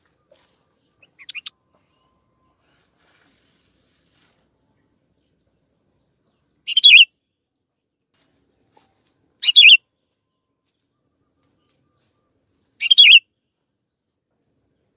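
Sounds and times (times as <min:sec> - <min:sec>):
canary song with buzzy warbled bursts: 0:00.0 - 0:03.0, 0:04.4 - 0:08.0, 0:08.8 - 0:13.4.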